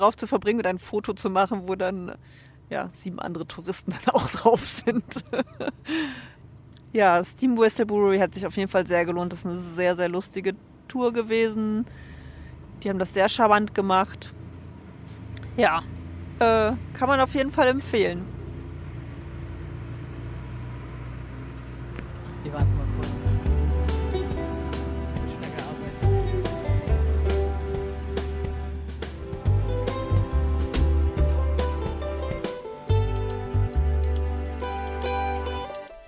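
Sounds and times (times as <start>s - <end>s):
speech: 0.0s - 12.1s, 12.8s - 14.4s, 15.6s - 18.4s
huge tractor pulling two loaded trailers rumbling past: 0.0s - 35.7s
laughter: 4.2s - 5.8s
loaded trailers clattering: 12.8s - 33.8s.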